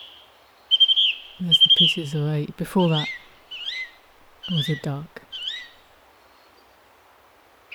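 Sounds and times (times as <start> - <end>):
song thrush singing: 0.8 - 5.8
speech: 1.4 - 3.2, 4.5 - 5.2.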